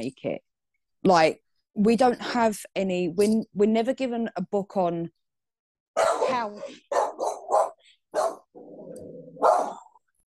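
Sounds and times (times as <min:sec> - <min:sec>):
speech: 0:00.0 - 0:05.2, 0:06.0 - 0:07.1
dog barking: 0:06.0 - 0:08.6, 0:09.3 - 0:10.0
dog growling low: 0:08.6 - 0:09.9.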